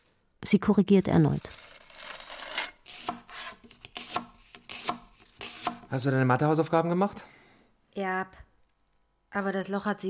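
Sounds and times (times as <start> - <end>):
speech: 0.4 - 1.6, 5.9 - 7.4, 8.0 - 8.5, 9.3 - 10.0
putty knife scraping off excess filler: 1.5 - 5.9.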